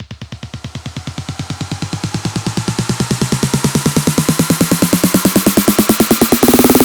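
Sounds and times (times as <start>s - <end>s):
snare drum build-up effect: 0.0s - 6.8s.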